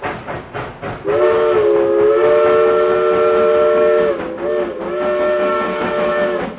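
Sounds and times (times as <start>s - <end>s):
steam train chuffing: 0.0s - 6.5s
steam train multi-tone whistle: 1.0s - 6.5s.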